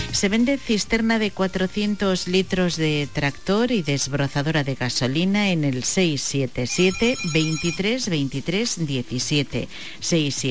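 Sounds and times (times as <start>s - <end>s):
speech: 0.2s - 10.4s
electronic telephone ringtone for an incoming call: 6.7s - 8.1s.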